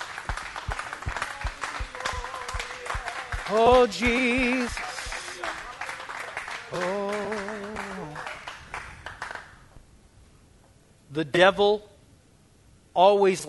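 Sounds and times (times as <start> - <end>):
worship song: 0.0 - 9.0
crowd clapping hands in praise during a worship song: 0.0 - 9.7
speech: 3.5 - 4.9, 11.2 - 11.9, 13.0 - 13.4.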